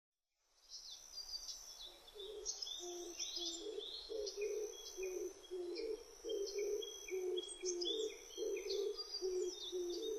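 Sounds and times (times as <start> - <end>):
other birds whistling and chirping: 0.8 - 10.1
Oriental turtle dove cooing: 2.2 - 10.1.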